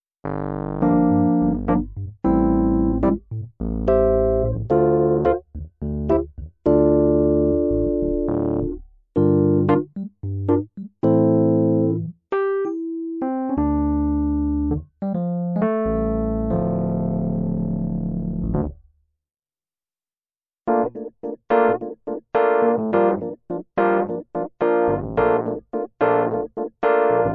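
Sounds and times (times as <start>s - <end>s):
electric piano with upright piano sound: 0.3s - 18.8s, 20.7s - 27.3s.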